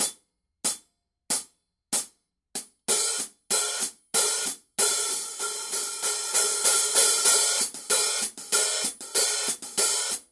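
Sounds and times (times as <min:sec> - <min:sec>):
bronze alloy hi-hat playing a dark crisp pattern: 0:02.9 - 0:10.3.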